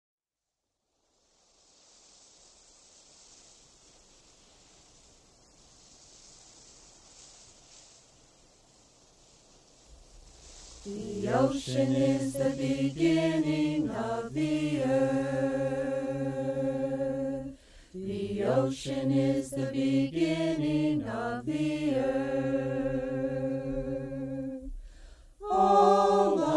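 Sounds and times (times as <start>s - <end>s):
chanting: 10.8s - 24.8s, 25.4s - 26.5s.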